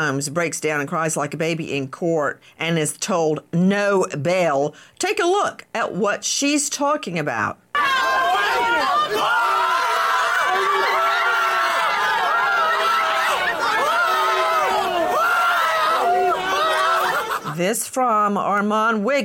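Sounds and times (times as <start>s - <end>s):
speech: 0.0s - 9.4s, 17.6s - 19.2s
rowdy crowd shouting and cheering outdoors outside a courthouse: 7.7s - 17.6s
people in a crowd whooping and laughing: 7.8s - 17.6s.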